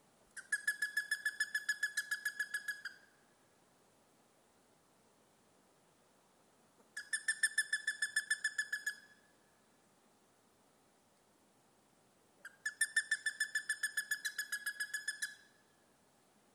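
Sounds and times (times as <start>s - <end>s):
plumbeous ibis calling: 0.4s - 3.1s, 7.0s - 9.3s, 12.4s - 15.7s.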